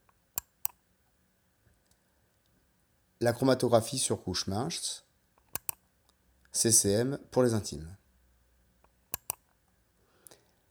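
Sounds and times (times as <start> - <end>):
computer mouse clicks: 0.4 - 0.8, 5.4 - 5.8, 8.8 - 9.6
speech: 3.2 - 5.0, 6.6 - 8.0.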